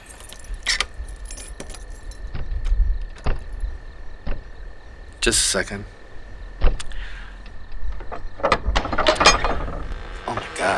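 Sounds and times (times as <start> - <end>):
bunch of keys jangling: 0.0 - 2.3
heavy door being opened with thud, clicks and creaking: 2.3 - 4.8, 6.6 - 10.7
speech: 5.2 - 6.0.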